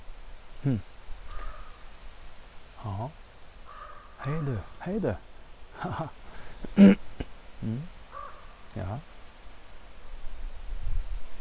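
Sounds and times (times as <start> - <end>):
speech: 0.6 - 0.9, 2.8 - 3.2, 4.2 - 8.0, 8.8 - 9.1
raven croaking: 0.6 - 1.8, 3.6 - 5.1, 5.8 - 8.6.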